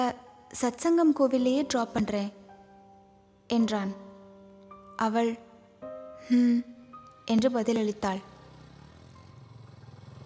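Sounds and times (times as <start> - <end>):
speech: 0.0 - 2.4, 3.5 - 4.0, 5.0 - 5.4, 6.2 - 6.7, 7.3 - 8.3
motorcycle engine rumbling to an idle: 7.3 - 10.2.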